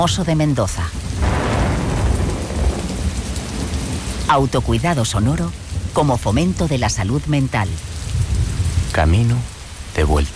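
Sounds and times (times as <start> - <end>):
speech: 0.0 - 1.1, 4.3 - 8.0, 9.0 - 10.3
heavy rain of a storm: 0.0 - 10.3
deep continuous thunder rumble: 0.8 - 10.3.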